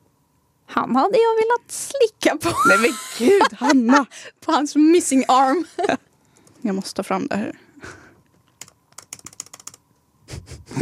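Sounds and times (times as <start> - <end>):
speech: 0.7 - 6.0, 6.6 - 8.0
laughter: 2.4 - 4.2, 5.3 - 6.0
rapid forceful clicks and key taps on a computer: 8.4 - 9.8.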